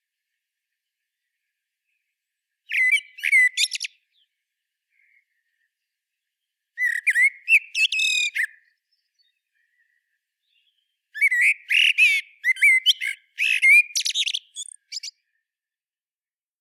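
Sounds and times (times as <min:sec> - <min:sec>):
common blackbird Turdus merula singing: 0:02.7 - 0:04.3, 0:06.8 - 0:15.2.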